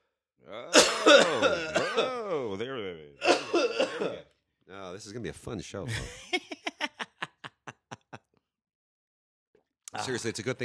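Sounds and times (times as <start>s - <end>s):
speech: 0.4s - 1.7s, 5.0s - 6.4s, 10.0s - 10.6s
person coughing: 0.7s - 2.4s, 3.2s - 4.2s
laughter: 1.1s - 2.6s, 5.9s - 8.2s.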